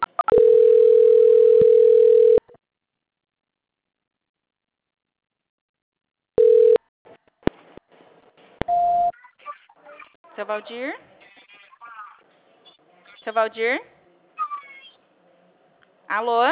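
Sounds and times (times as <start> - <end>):
telephone line tone during a call transfer: 0.2 - 2.4, 6.4 - 6.8
speech: 10.5 - 11.1, 13.3 - 14.0, 16.1 - 16.4.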